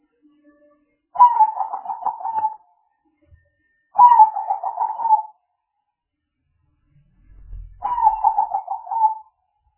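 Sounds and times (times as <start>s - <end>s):
spotted dove giving throaty pulsed coo phrases: 1.2s - 2.6s, 4.0s - 5.3s, 7.8s - 9.2s
brief low rumble: 6.6s - 8.4s.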